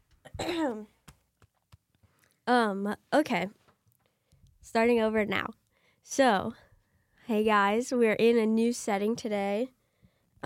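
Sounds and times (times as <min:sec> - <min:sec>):
loud rough cough with throat-clearing quality: 0:00.2 - 0:00.8
speech: 0:00.4 - 0:01.0, 0:02.5 - 0:03.6, 0:04.6 - 0:06.6, 0:07.3 - 0:09.8.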